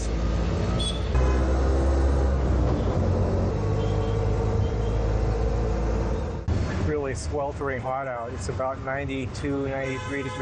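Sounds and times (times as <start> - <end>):
auto rickshaw engine rumble in heavy city traffic in India: 0.0 - 7.8
rattling road noise: 0.0 - 10.3
speech: 7.2 - 10.3.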